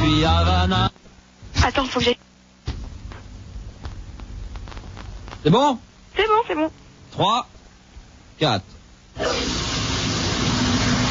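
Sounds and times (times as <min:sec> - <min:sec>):
speech: 0:00.2 - 0:01.0, 0:01.7 - 0:02.3, 0:05.4 - 0:07.5, 0:08.4 - 0:09.5
shower water running: 0:09.2 - 0:11.1.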